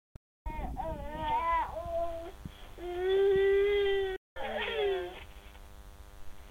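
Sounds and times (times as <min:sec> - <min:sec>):
one-year-three-month-old girl whimpering over a baby monitor: 0:00.5 - 0:05.2.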